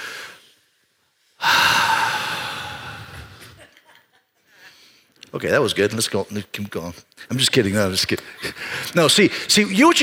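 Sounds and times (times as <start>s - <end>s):
audience taking a deep breath and dramatically exhaling together: 1.4s - 3.6s
speech: 5.3s - 10.0s.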